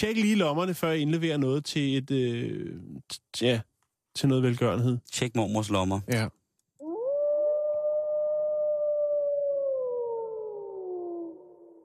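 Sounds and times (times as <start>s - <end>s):
speech: 0.0s - 6.4s
single wolf howling: 6.8s - 11.8s.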